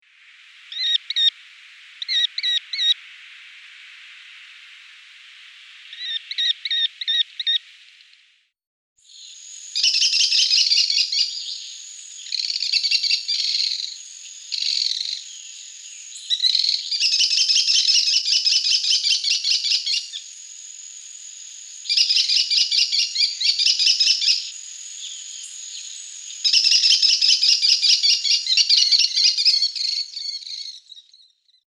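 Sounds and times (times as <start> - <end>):
American kestrel calling in Guadeloupe: 2.0 - 3.0, 6.0 - 7.6, 9.7 - 20.2, 21.9 - 31.2.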